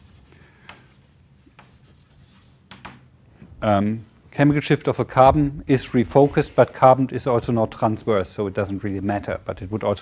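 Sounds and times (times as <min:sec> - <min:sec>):
handwriting scratching strokes: 0:00.0 - 0:02.7
speech: 0:03.6 - 0:10.0.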